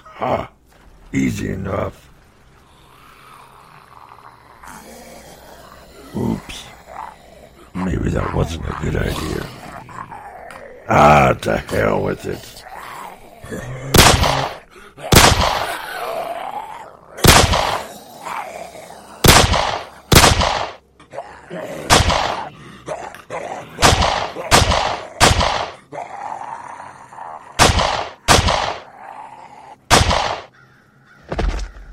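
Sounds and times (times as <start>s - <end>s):
speech: 0.2s - 2.1s, 7.8s - 9.6s, 10.9s - 12.6s, 13.5s - 13.8s
gunfire in a video game: 13.9s - 15.8s, 17.2s - 17.9s, 19.2s - 20.8s, 21.9s - 22.5s, 23.8s - 25.8s, 27.6s - 28.8s, 29.9s - 30.5s.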